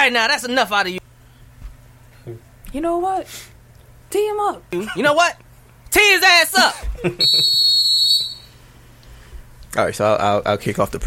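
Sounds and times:
speech: 0.0s - 1.1s, 2.2s - 3.5s, 4.1s - 7.7s, 9.7s - 11.0s
quiet hum: 0.0s - 11.0s
whistle being blown: 7.2s - 8.6s.

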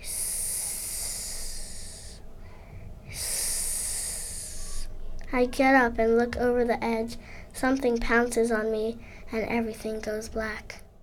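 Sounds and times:
long eerie hissing: 0.0s - 2.2s, 3.1s - 4.9s
speech: 5.3s - 10.8s.

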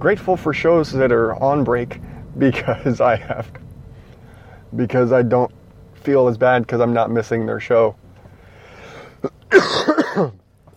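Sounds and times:
speech: 0.0s - 3.7s, 4.7s - 8.0s, 9.2s - 10.4s
person coughing: 9.2s - 10.4s.

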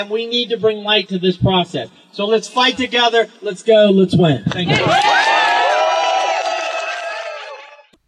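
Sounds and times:
speech: 0.0s - 5.4s
rally crowd cheering and whooping after a speech: 4.7s - 7.9s.

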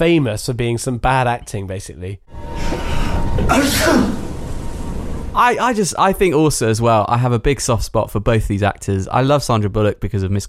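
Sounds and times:
speech: 0.0s - 2.5s, 3.4s - 4.2s, 5.4s - 10.4s
loud theatrical fake sneeze: 3.5s - 4.2s.

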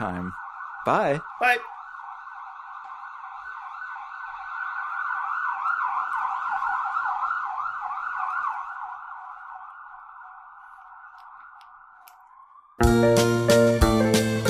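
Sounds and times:
speech: 0.0s - 1.8s, 12.8s - 13.5s
emergency vehicle siren passing: 0.0s - 14.4s.

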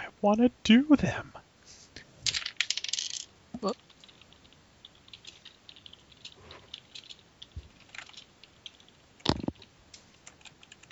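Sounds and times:
speech: 0.2s - 1.4s, 3.6s - 3.8s
seven dice rolled during a tabletop role-playing game: 2.2s - 9.7s.

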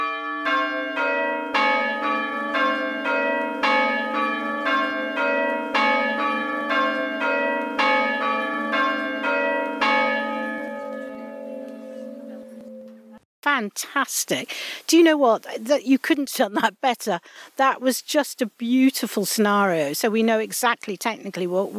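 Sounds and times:
four bronze church bells of copper and tin ringing: 0.0s - 13.2s
speech: 13.7s - 21.7s.

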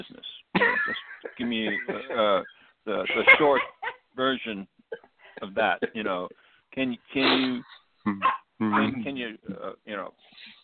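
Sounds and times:
laughter: 0.6s - 4.1s
speech: 0.9s - 4.7s, 5.4s - 10.6s
dog barking: 3.4s - 3.9s, 8.2s - 9.0s.

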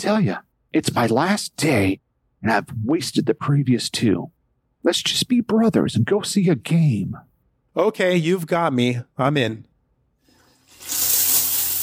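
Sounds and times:
speech: 0.0s - 9.7s
shower water gushing: 10.4s - 11.8s.

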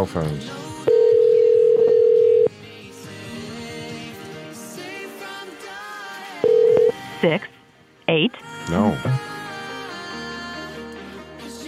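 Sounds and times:
speech: 0.0s - 0.6s, 7.2s - 9.3s
landline telephone dial tone: 0.9s - 2.5s, 6.4s - 7.0s.

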